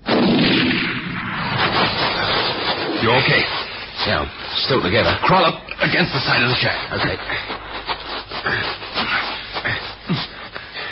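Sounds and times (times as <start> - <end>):
shotgun blast fired at people near a shack: 0.0 - 2.9
speech: 3.0 - 7.6, 8.4 - 8.8.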